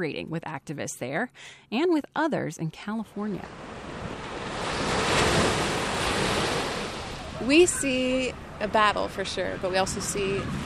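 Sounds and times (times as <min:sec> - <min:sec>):
speech: 0:00.0 - 0:04.0, 0:07.4 - 0:10.6
ocean surf breaking on the shore: 0:03.4 - 0:10.6
wind rushing across the microphone: 0:03.8 - 0:10.6.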